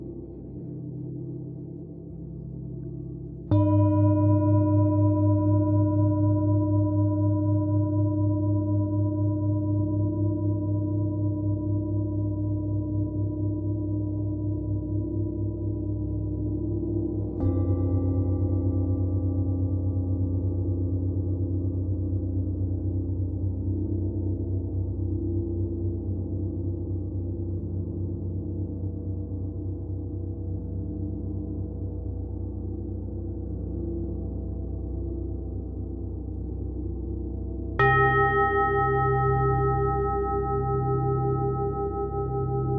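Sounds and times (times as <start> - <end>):
deep throbbing hum: 0.0 - 42.7
gong singing bowl struck and ringing: 3.4 - 22.8, 37.7 - 42.7.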